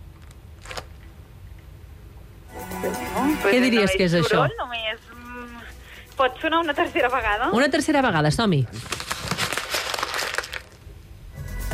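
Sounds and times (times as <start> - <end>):
paper being crumpled: 0.2 - 1.0, 8.7 - 10.9
speech: 3.2 - 5.2, 6.2 - 8.9.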